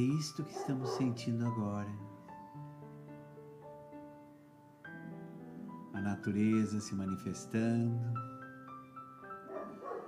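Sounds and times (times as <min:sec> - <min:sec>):
speech: 0:00.0 - 0:02.2, 0:06.2 - 0:08.3
small dog yapping and whining with high tonal barks: 0:00.6 - 0:01.2, 0:09.5 - 0:10.0.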